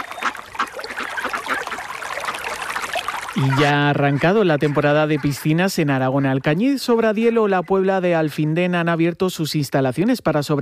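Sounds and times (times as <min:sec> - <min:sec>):
river water flowing: 0:00.0 - 0:04.6
speech: 0:03.4 - 0:10.5.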